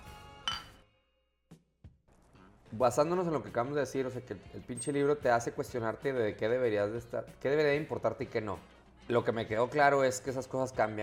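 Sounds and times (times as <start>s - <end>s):
glass handling noises: 0.5s - 0.8s
glasses clinking in a toast: 0.5s - 0.8s
speech: 2.7s - 11.0s.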